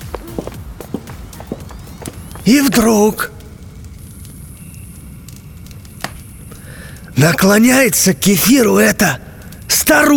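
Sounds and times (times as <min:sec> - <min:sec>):
clicking footsteps of girls walking: 0:00.0 - 0:03.6
speech: 0:02.4 - 0:03.3, 0:07.2 - 0:10.1.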